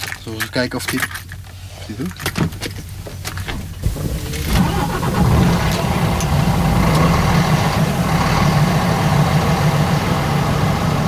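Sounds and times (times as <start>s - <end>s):
speech: 0.2s - 1.3s, 1.9s - 2.8s
old diesel truck engine cranking, catching and idling: 3.6s - 11.0s.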